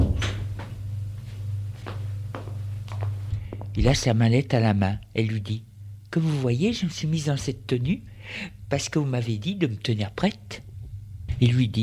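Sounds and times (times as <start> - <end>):
door closing with soft wooden clunks and rattles: 0.0 - 0.7
steady low hum: 0.0 - 11.8
speech: 3.8 - 10.7, 11.4 - 11.8.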